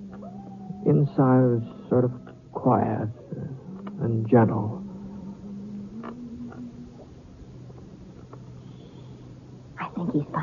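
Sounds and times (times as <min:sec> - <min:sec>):
faint continuous drone: 0:00.0 - 0:10.4
katydids chirping at night: 0:00.0 - 0:10.4
steady low hum: 0:00.0 - 0:10.4
speech: 0:00.8 - 0:03.2, 0:04.0 - 0:04.8, 0:10.2 - 0:10.4.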